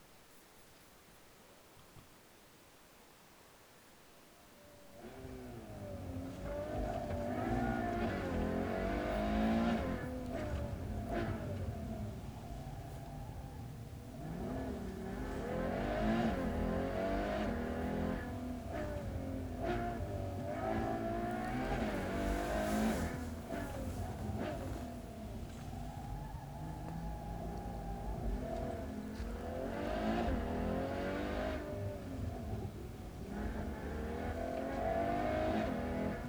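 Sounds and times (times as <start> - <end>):
Ferrari GTC4Lusso engine: 4.6 - 36.2.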